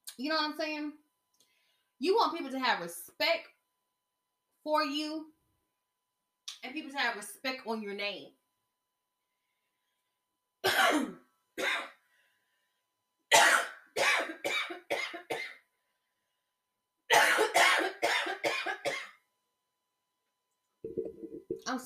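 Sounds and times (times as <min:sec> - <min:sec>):
speech: 0:00.2 - 0:01.0, 0:02.0 - 0:03.6, 0:04.6 - 0:05.4, 0:06.6 - 0:08.4, 0:10.6 - 0:11.9, 0:21.7 - 0:21.8
person coughing in harsh bursts: 0:10.6 - 0:12.0, 0:13.3 - 0:15.6, 0:17.1 - 0:19.2.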